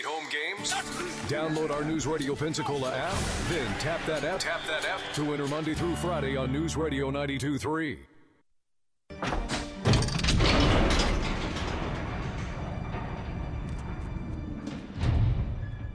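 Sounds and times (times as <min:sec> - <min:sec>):
speech: 0:00.0 - 0:08.1
large heavy door sliding open: 0:09.3 - 0:15.7.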